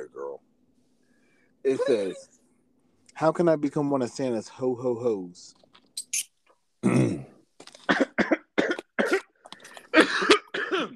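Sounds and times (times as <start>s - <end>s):
speech: 1.6s - 2.4s, 3.2s - 7.3s
heavy rasping coughing: 6.8s - 10.9s.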